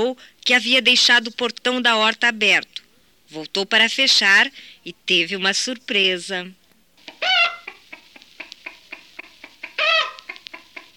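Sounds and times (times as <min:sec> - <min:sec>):
speech: 0:00.0 - 0:06.6
chickens clucking: 0:07.0 - 0:10.9.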